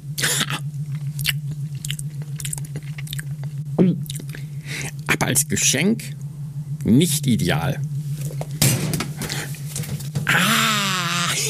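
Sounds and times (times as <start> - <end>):
steady low hum: 0.0 - 11.4
biting and chewing an already-bitten apple: 0.9 - 4.4
speech: 5.2 - 6.2, 6.9 - 7.9.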